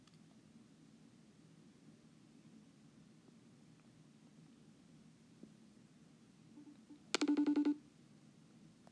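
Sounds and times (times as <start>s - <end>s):
short electronic phone tones during dropped line: 6.6s - 7.8s.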